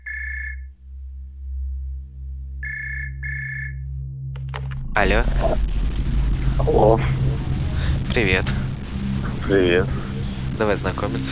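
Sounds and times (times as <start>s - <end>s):
telephone ringing with an electronic high-pitched trill: 0.0s - 0.7s, 2.6s - 3.8s
steady low hum: 0.0s - 11.3s
speech: 5.0s - 5.8s, 6.6s - 7.2s, 8.2s - 8.7s, 9.5s - 10.0s, 10.6s - 11.3s.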